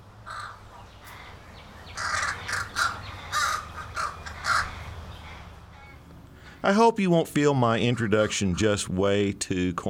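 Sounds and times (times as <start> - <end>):
American crows cawing: 0.2 - 6.6
speech: 6.6 - 9.8.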